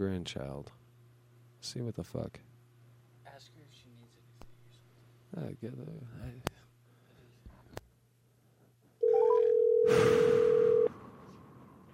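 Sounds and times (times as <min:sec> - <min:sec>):
speech: 0:00.0 - 0:00.8, 0:01.6 - 0:02.5, 0:05.3 - 0:06.6
telephone ringback tone on an outgoing call to a grandmother: 0:09.0 - 0:10.9.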